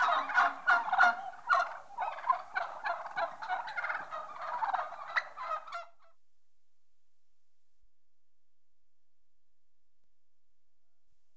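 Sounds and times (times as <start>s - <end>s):
turkey hen call: 0.0s - 5.9s.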